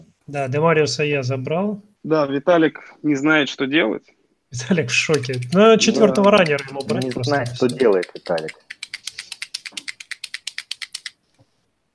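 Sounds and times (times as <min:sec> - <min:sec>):
speech: 0:00.3 - 0:08.6
felt-tip marker being shaken with clicking rattles: 0:04.6 - 0:11.6.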